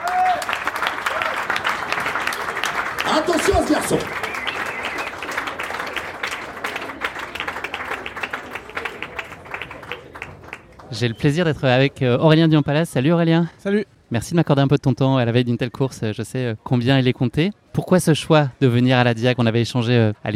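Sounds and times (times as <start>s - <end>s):
crowd applause welcoming a runner: 0.0s - 11.0s
speech: 3.2s - 4.2s, 10.9s - 20.3s.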